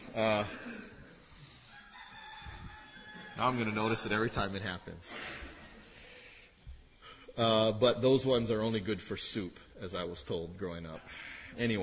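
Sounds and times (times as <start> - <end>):
faint indistinct outdoor noise: 0.0 - 11.8
speech: 0.2 - 0.8, 3.4 - 5.4, 7.4 - 11.8
rooster crowing: 1.6 - 4.4.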